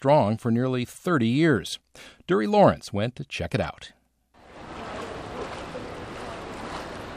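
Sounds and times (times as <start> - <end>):
speech: 0.0 - 4.0
water splashing and churning in an outdoor pool: 4.4 - 7.1.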